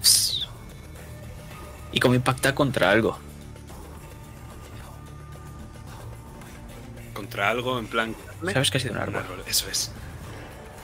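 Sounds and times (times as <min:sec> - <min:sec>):
person whistling imitating a bullet flying past: 0:00.0 - 0:00.6
speech: 0:02.0 - 0:03.3, 0:07.4 - 0:10.1.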